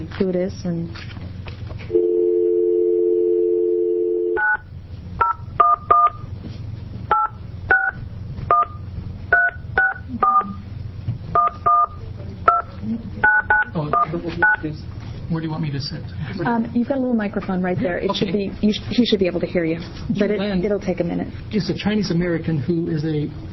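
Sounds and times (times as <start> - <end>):
speech: 0.1 - 1.2, 15.5 - 23.5
telephone dial tone: 1.9 - 4.6
telephone keypad beeps: 4.4 - 4.6, 5.2 - 6.2, 7.1 - 8.8, 9.4 - 10.6, 11.4 - 14.6.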